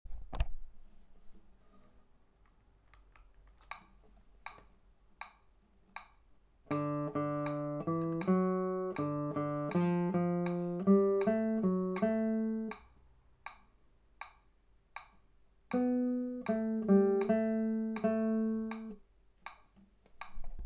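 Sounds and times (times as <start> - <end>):
guitar chorus in D: 6.7 - 12.8, 15.7 - 19.0.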